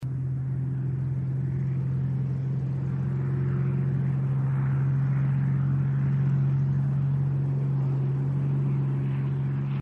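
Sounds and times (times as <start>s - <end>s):
small plane overhead: 0.0s - 9.8s.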